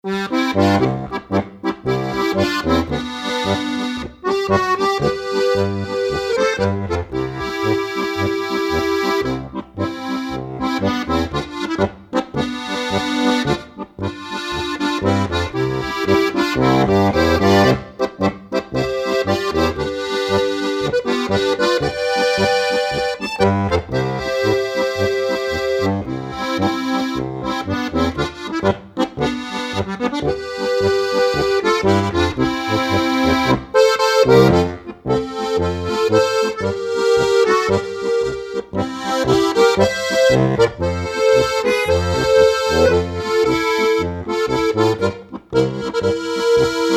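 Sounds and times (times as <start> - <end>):
GCFB accordion song: 0.0 - 46.9.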